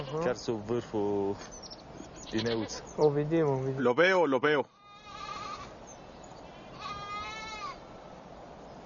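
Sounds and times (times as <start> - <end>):
goat bleating: 0.0 - 0.4, 2.2 - 2.8, 4.7 - 5.8, 6.4 - 7.9
outdoor noise: 0.0 - 8.8
speech: 0.1 - 4.8.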